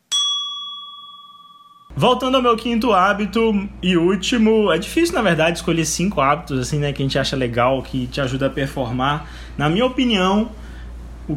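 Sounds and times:
small bell chime: 0.0 - 1.9
speech: 2.0 - 10.6.

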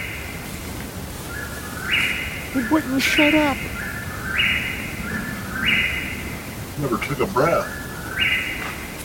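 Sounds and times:
steady outdoor hiss: 0.0 - 9.0
bird calling with whistling notes in the woods: 1.3 - 6.3, 7.6 - 8.8
speech: 2.5 - 3.7, 6.8 - 7.8.

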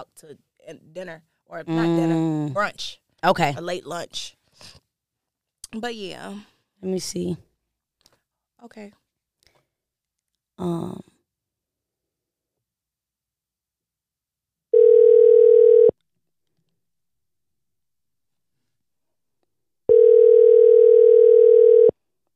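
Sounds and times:
speech: 0.0 - 4.8, 5.7 - 7.5, 8.6 - 9.0, 10.6 - 11.1
person sighing: 10.6 - 11.1
phone ringback tone with buzzing rings: 14.8 - 15.9, 19.9 - 21.9.

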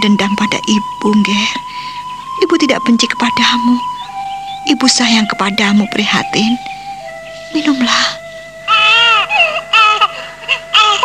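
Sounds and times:
speech: 0.0 - 1.7, 2.4 - 3.9, 4.7 - 6.7, 7.5 - 8.2
baby crying: 8.7 - 11.0.

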